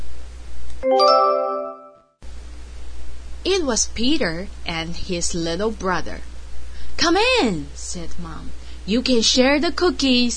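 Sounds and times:
doorbell chiming ding-dong: 0:00.8 - 0:02.0
speech: 0:03.4 - 0:06.3, 0:07.0 - 0:10.3.

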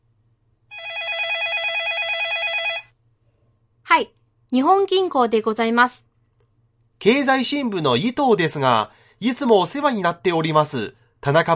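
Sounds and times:
faint low hum: 0:00.0 - 0:11.5
electronic telephone ringing with a warbling trilling tone: 0:00.7 - 0:03.0
speech: 0:04.0 - 0:06.1, 0:07.0 - 0:11.5.

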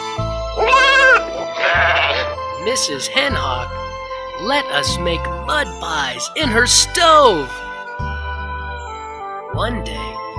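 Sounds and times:
sheep bleating: 0:00.6 - 0:02.4
speech: 0:02.6 - 0:07.6, 0:09.6 - 0:10.2.

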